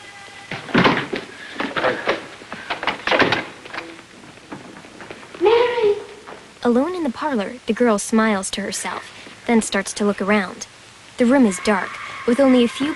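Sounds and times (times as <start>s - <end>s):
door to a room off a dark corridor opening with clunks and thuds: 0.5s - 5.2s
speech: 1.8s - 2.2s, 6.6s - 12.9s.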